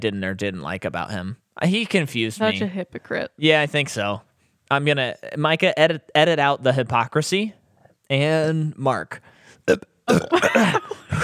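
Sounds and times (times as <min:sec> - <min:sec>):
speech: 0:00.0 - 0:11.2
loud drawn-out burp: 0:09.7 - 0:11.2.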